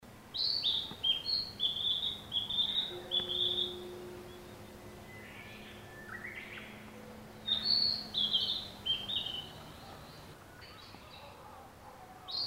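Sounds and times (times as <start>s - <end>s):
Narcissus flycatcher song of clear high whistled notes: 0.4s - 10.8s.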